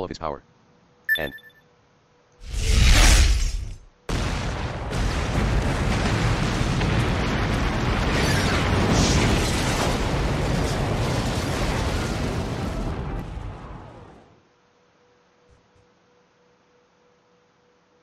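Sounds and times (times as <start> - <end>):
speech: 0.0 - 0.5, 1.2 - 1.4
loud explosion from a missile hitting a building: 2.5 - 14.3
crashing crumbling debris of a collapsing building: 4.1 - 14.2.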